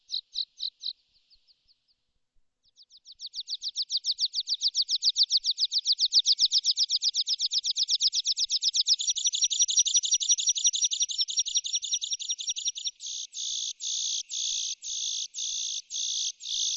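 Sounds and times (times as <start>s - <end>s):
bird chattering: 3.2s - 16.7s.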